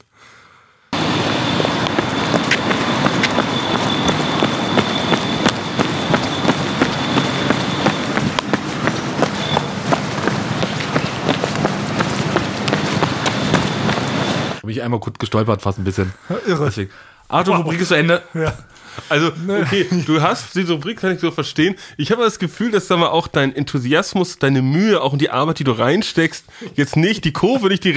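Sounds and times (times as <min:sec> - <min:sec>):
hurried footsteps on a sidewalk of square paving stones: 0:01.0 - 0:14.6
speech: 0:14.9 - 0:27.9
laughter: 0:18.3 - 0:20.5.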